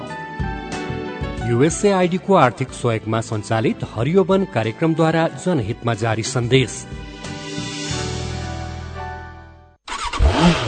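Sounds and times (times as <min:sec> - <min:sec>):
speech: 0:01.5 - 0:07.1
Bangladesh-made motorcycle engine revving: 0:09.9 - 0:10.6.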